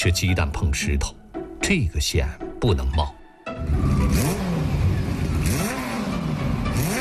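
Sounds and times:
speech: 0.0 - 4.2
motorcycle engine revving on a narrow broken mountain road: 3.6 - 7.0.

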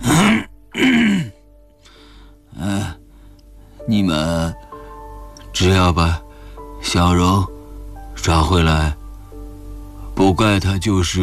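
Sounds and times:
person groaning: 0.0 - 1.4
throaty cough-like grunt: 0.0 - 1.4
speech: 3.9 - 4.6, 5.6 - 6.2, 6.8 - 7.5, 8.2 - 9.0, 10.2 - 11.2.

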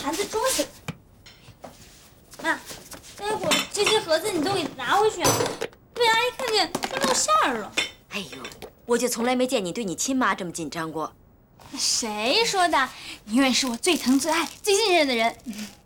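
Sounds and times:
people talking animatedly: 0.0 - 0.8, 2.4 - 15.8
dishes and cutlery clinking as home-cooked food is put onto a plate: 3.3 - 5.8.

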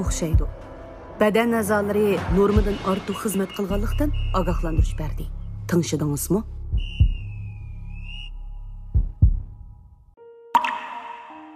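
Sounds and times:
speech: 0.0 - 7.0
steady whistle-like tone: 3.1 - 5.2, 6.8 - 8.6
drops of water dripping: 10.6 - 11.5.

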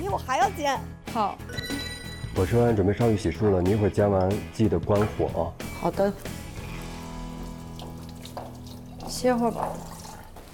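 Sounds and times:
speech: 0.1 - 1.8, 2.4 - 6.4, 9.2 - 9.9
water running from a kitchen tap into a sink for washing dishes: 7.2 - 10.5.

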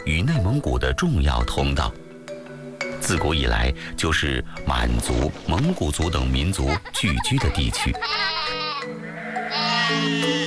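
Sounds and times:
speech: 0.0 - 2.0, 3.0 - 8.6, 9.9 - 10.4
laughter: 6.5 - 8.0
flock of sheep bleating on a grassland pasture: 7.9 - 10.4.

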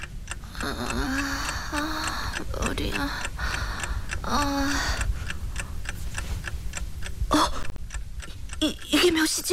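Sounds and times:
clock ticking: 0.0 - 9.5
speech: 0.6 - 3.6, 4.2 - 5.1, 8.6 - 9.5.

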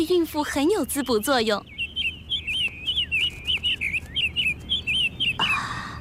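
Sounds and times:
speech: 0.0 - 1.7
small caged bird chirping: 0.0 - 5.9
fluttering rustle: 2.5 - 4.8.

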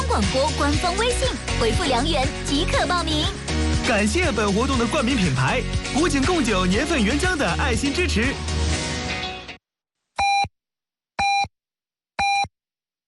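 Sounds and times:
speech: 0.2 - 8.6
hourly time signal beeps on a Chinese traffic radio station: 10.2 - 10.5, 11.2 - 11.5, 12.2 - 12.5.

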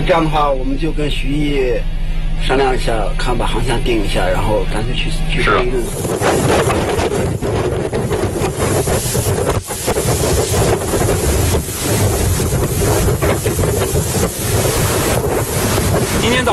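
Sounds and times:
strong wind at sea buffeting a boat: 0.0 - 16.5
speech: 0.1 - 7.4
wind gusts hitting the microphone: 2.6 - 16.5
big waves at sea buffeting a boat: 5.3 - 16.5.

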